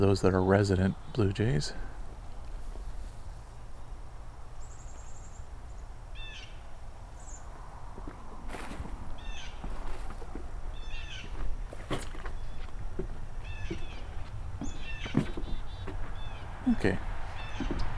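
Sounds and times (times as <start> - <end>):
speech: 0.0 - 1.9
short chirping bird notes: 4.6 - 7.7, 9.1 - 9.7, 10.7 - 11.4, 12.2 - 17.9.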